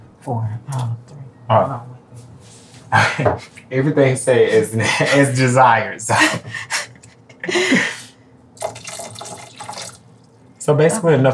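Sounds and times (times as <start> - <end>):
speech: 0.2 - 2.3, 2.9 - 6.8, 7.4 - 7.9, 10.7 - 11.3
laughter: 4.5 - 8.1
water pouring into a cooking pot: 8.6 - 10.4.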